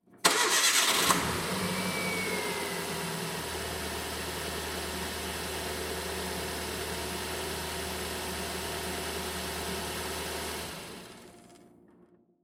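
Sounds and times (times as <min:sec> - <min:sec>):
Ford Fiesta starting and switching off: 0:00.2 - 0:11.6.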